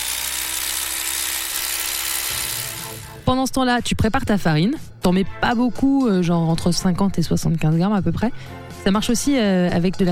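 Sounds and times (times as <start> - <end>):
electric beater whipping egg whites with salt: 0.0 - 3.3
speech: 3.3 - 10.0.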